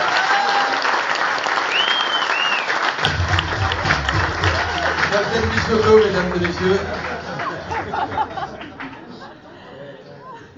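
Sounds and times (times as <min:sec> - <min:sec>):
audience applause welcoming a performer: 0:00.0 - 0:09.6
faint whistles from an audience: 0:01.7 - 0:02.8
low rumble: 0:03.0 - 0:05.7
laughter: 0:03.1 - 0:10.5
speech: 0:05.3 - 0:07.1.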